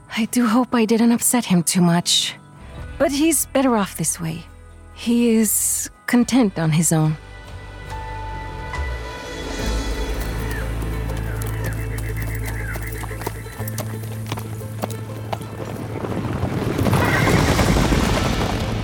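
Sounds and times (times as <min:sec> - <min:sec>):
speech: 0:00.2 - 0:02.4, 0:03.0 - 0:07.3
horse hooves trotting down a road: 0:09.7 - 0:18.8
horse neighing in shrill wavering whinnies: 0:10.1 - 0:14.4, 0:16.8 - 0:17.8.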